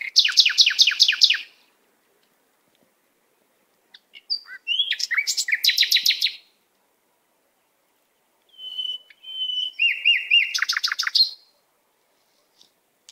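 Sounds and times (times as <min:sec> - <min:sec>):
canary song of rattling trills and whistles: 0:00.0 - 0:01.6, 0:03.9 - 0:06.5, 0:08.5 - 0:11.6.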